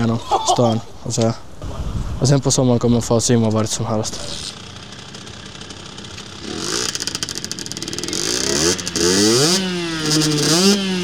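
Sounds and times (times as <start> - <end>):
speech: 0.0 - 1.5, 2.2 - 4.6, 10.1 - 10.9
small moped engine sputtering and revving: 4.2 - 11.0.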